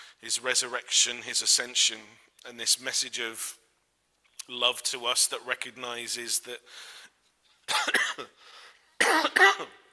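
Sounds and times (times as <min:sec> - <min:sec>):
faint breathing: 0:00.0 - 0:00.2, 0:06.6 - 0:07.3, 0:08.4 - 0:09.0
speech: 0:00.2 - 0:03.6, 0:04.5 - 0:07.1, 0:07.7 - 0:09.8
person coughing: 0:07.7 - 0:08.4, 0:09.0 - 0:09.9.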